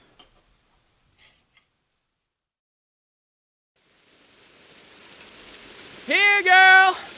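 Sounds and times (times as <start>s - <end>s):
rain falling during a storm: 3.8s - 7.1s.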